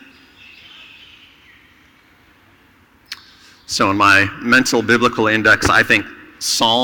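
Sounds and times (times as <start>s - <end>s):
birds chirping and twittering near their nest: 0.0s - 4.4s
speech: 3.7s - 6.8s.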